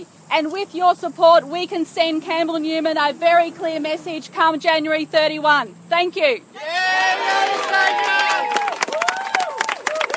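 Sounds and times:
speech: 0.0 - 8.7
shouted voices of rally supporters: 6.6 - 9.6
crowd of Labor party supporters cheering and whooping at a campaign rally: 6.6 - 10.1
rally supporters clapping: 7.0 - 10.1.

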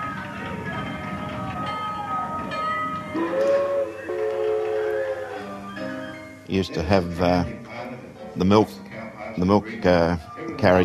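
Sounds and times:
old train engine rumbling and chugging: 0.0 - 7.5
speech: 3.1 - 3.6, 6.5 - 7.6, 8.4 - 8.8, 9.4 - 10.8
old train whistle blowing: 3.1 - 6.2.

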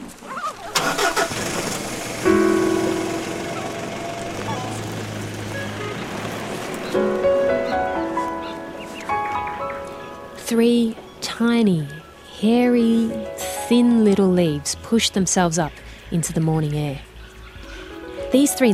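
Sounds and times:
car engine starting in a vehicle loaded with planting equipment: 0.7 - 9.3
speech: 10.5 - 17.1, 18.3 - 18.7.

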